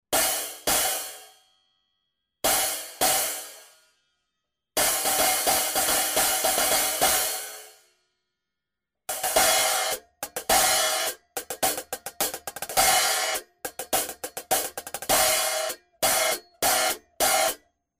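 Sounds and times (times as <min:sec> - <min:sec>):
12 and 14 inch cymbals: 0:00.2 - 0:01.5, 0:02.5 - 0:03.9, 0:04.8 - 0:07.9, 0:09.1 - 0:17.6.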